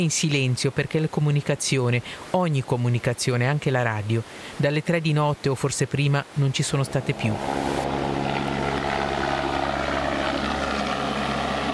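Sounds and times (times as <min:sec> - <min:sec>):
speech: 0:00.0 - 0:08.5
helicopter engine and rotor droning: 0:06.7 - 0:11.7.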